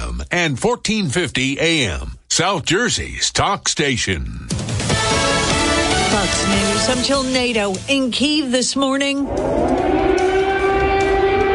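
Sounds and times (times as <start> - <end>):
speech: 0.2 - 5.2, 6.1 - 10.2
low rumbling: 9.1 - 11.5
air raid siren wailing: 9.2 - 11.5.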